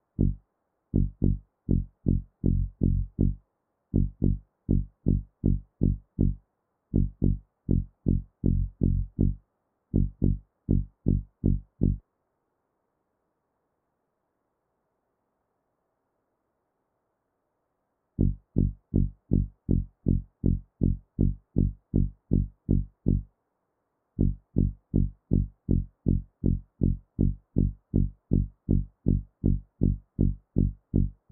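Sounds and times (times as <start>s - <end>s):
bassline: 0.0s - 0.4s, 1.0s - 3.4s, 4.0s - 9.4s, 10.0s - 12.0s, 18.2s - 23.3s, 24.2s - 31.3s.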